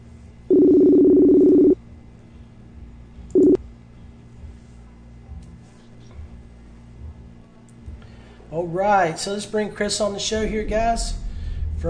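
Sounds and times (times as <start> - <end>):
outgoing video call ringback tone for a live stream: 0.5 - 1.8, 3.4 - 3.6
speech: 8.6 - 11.2.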